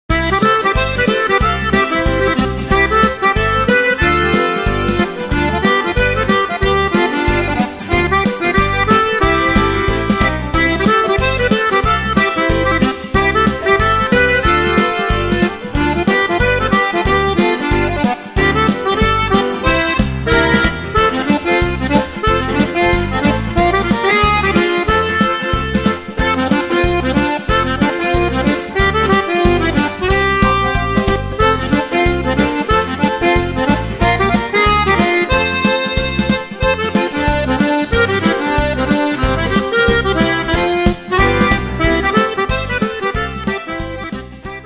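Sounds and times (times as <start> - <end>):
Cajun accordion music: 0.0 - 44.6.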